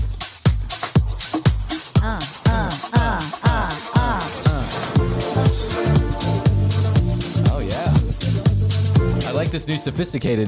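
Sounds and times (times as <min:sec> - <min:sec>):
steady thumping kick drum: 0:00.0 - 0:09.2
techno-style club lounge music: 0:00.0 - 0:10.4
deep bass: 0:02.0 - 0:09.7
speech: 0:09.6 - 0:10.4.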